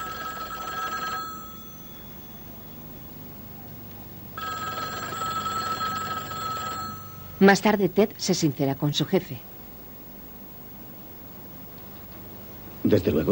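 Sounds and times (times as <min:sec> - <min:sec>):
telephone electric bell ringing in an empty untidy flat: 0:00.0 - 0:02.7, 0:04.4 - 0:07.6
speech: 0:07.4 - 0:09.5, 0:12.9 - 0:13.2.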